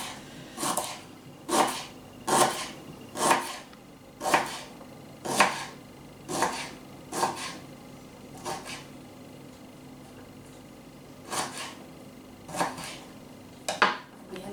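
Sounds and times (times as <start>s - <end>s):
knife chopping ginger into coarse pieces on a board: 0.0s - 7.6s, 8.4s - 8.9s, 11.2s - 11.8s, 12.5s - 13.1s.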